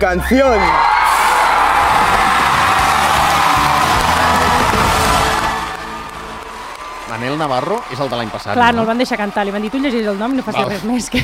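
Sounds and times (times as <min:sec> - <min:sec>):
speech: 0:00.0 - 0:00.9, 0:07.1 - 0:11.2
large crowd screaming and cheering at an announcement: 0:00.0 - 0:11.1.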